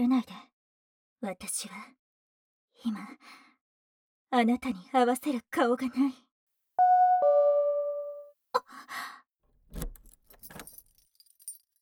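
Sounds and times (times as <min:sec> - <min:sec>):
speech: 0:00.0 - 0:00.5, 0:01.2 - 0:02.0, 0:02.8 - 0:03.4, 0:04.3 - 0:06.2
two-note electronic chime: 0:06.8 - 0:08.2
keys jangling and clinking at a house door: 0:09.9 - 0:11.7.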